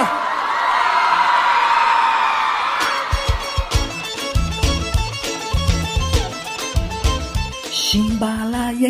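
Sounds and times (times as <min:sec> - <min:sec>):
crowd cheering and whooping: 0:00.0 - 0:05.1
punchy rhythmic music track: 0:02.8 - 0:08.8
speech: 0:07.9 - 0:08.8.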